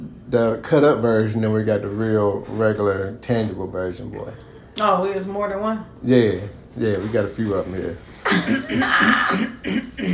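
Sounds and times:
speech: 0:00.3 - 0:10.1
person clearing throat with rough raspy bursts: 0:08.2 - 0:10.1.

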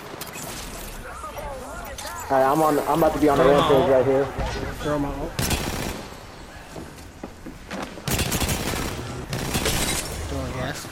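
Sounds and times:
speech: 0:02.3 - 0:05.4
video game gunfire in rapid bursts: 0:05.4 - 0:06.2, 0:08.0 - 0:10.2.

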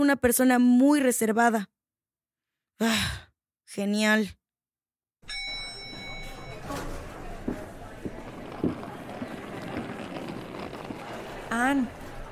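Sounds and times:
speech: 0:00.0 - 0:01.8, 0:02.8 - 0:04.4, 0:11.6 - 0:12.0
hurried running footsteps: 0:07.3 - 0:12.2.

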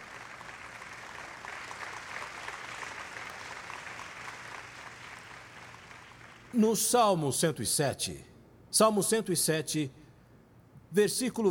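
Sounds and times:
sustained applause from a large audience: 0:00.0 - 0:06.5
speech: 0:06.5 - 0:10.0, 0:10.9 - 0:11.4.

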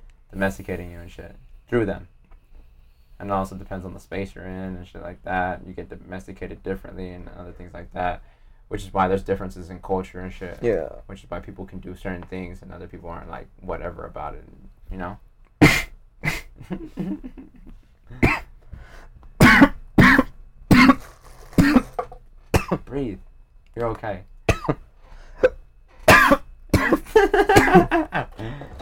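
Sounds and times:
speech: 0:00.3 - 0:02.2, 0:03.2 - 0:15.9, 0:16.6 - 0:19.0, 0:22.7 - 0:24.8, 0:26.3 - 0:28.8
throat-clearing: 0:15.6 - 0:16.5, 0:19.4 - 0:22.8
man's coughing fit: 0:15.6 - 0:16.6, 0:18.1 - 0:18.5, 0:19.4 - 0:22.8, 0:24.5 - 0:24.8, 0:25.4 - 0:28.2
breathy gasps: 0:28.4 - 0:28.8.

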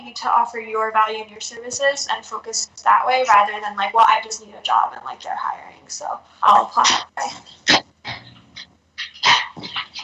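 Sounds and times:
speech: 0:00.2 - 0:08.3
dog barking and growling: 0:06.8 - 0:10.0.

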